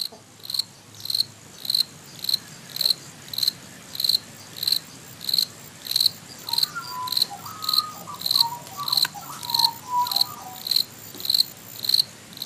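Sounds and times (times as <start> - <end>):
crickets chirping near Sydney: 0.0 - 12.4
faint brief warbling call: 6.5 - 10.8.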